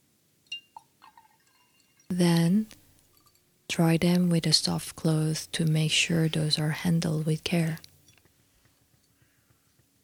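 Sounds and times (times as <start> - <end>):
light ceramic clink: 0.5 - 2.1, 3.1 - 3.5
rinse water draining into a drainer: 0.5 - 2.1
speech: 2.1 - 2.8, 3.8 - 7.9.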